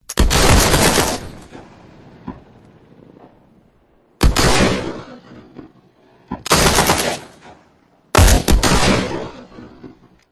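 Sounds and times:
sci-fi guns shooting: 0.1s - 2.6s, 4.2s - 5.5s, 6.4s - 10.1s.

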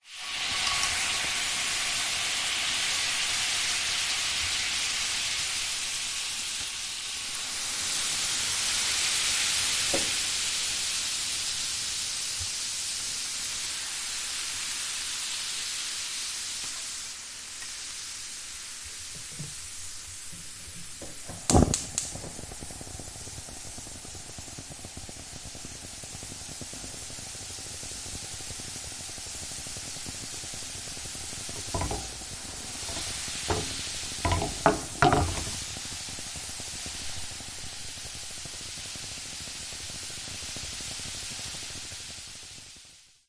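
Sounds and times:
oil and water sizzling in a household pan: 0.0s - 43.2s
oven hob igniting: 19.1s - 41.9s
household pan moving on oven hob: 31.5s - 35.8s.

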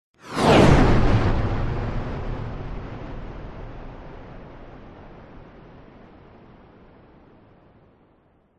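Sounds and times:
fighter jet passing by low at extreme speed: 0.2s - 5.4s.

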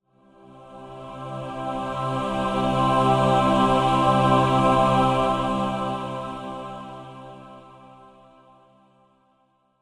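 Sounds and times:
heavenly choir singing: 0.4s - 8.1s.

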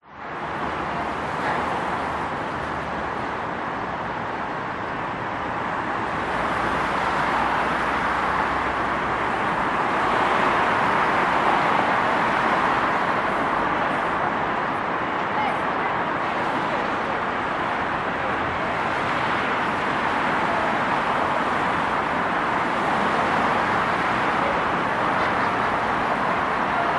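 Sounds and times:
city motorway traffic under footbridge at Darling Harbour Sydney Australia: 0.0s - 26.9s.

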